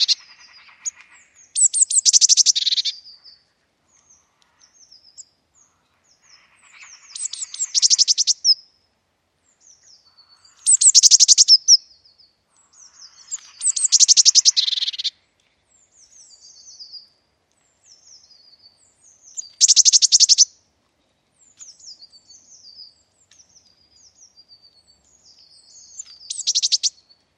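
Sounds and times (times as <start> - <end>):
Eurasian blue tit calls: 0.0 - 3.0, 4.2 - 8.6, 10.1 - 11.8, 12.7 - 15.1, 19.3 - 20.5, 25.3 - 27.0.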